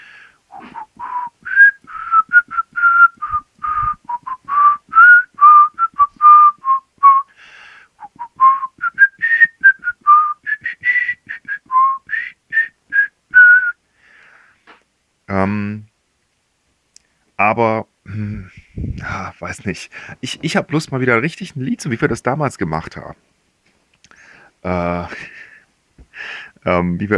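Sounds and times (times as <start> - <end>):
person whistling a lively melody: 0.5 - 7.4, 8.0 - 13.8
speech: 19.6 - 23.3, 24.6 - 25.3, 26.7 - 27.1.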